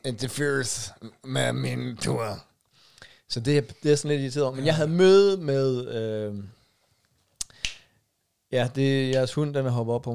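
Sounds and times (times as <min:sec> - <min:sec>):
speech: 0:00.0 - 0:02.5, 0:03.3 - 0:06.6, 0:08.5 - 0:10.1
finger snapping: 0:07.4 - 0:07.8.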